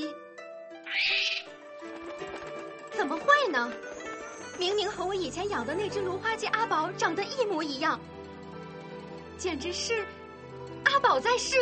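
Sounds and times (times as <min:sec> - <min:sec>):
tamed gyrfalcon screeching: 0:00.8 - 0:01.6
speech: 0:03.0 - 0:03.9, 0:04.6 - 0:08.1, 0:09.4 - 0:10.2, 0:11.0 - 0:11.6.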